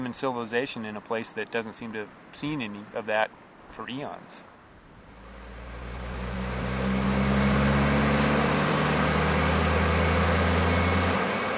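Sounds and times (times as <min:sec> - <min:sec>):
speech: 0:00.1 - 0:04.5
seismic thumper truck engine running: 0:04.8 - 0:11.5.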